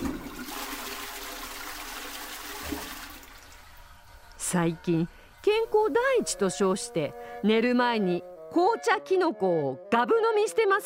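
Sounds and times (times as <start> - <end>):
toilet flushing at two in the middle of the night: 0.0 - 3.8
speech: 4.5 - 10.8.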